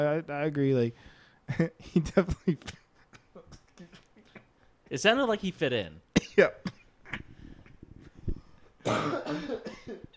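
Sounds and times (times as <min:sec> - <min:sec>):
speech: 0:00.0 - 0:02.8, 0:04.9 - 0:06.8, 0:08.8 - 0:10.1
person coughing and laughing: 0:01.5 - 0:04.5, 0:06.1 - 0:07.3, 0:08.8 - 0:10.1.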